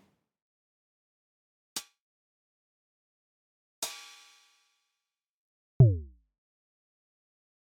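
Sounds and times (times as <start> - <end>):
heartbeat from a drum synthesizer: 5.8 - 6.1.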